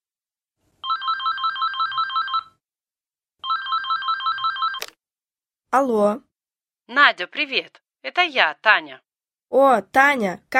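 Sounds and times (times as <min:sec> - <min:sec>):
telephone ringing with an electronic trill: 0:00.8 - 0:02.6, 0:03.4 - 0:05.0
speech: 0:05.7 - 0:06.3, 0:06.9 - 0:10.5.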